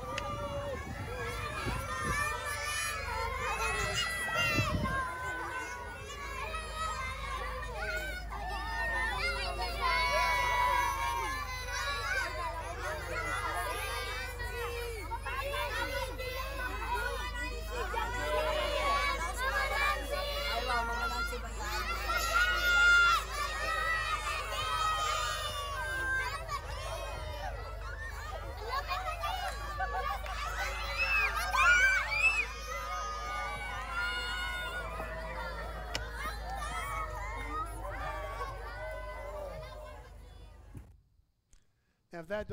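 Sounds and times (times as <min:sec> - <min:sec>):
crowd of schoolchildren shouting and cheering in greeting: 0:00.0 - 0:40.9
speech: 0:42.2 - 0:42.5.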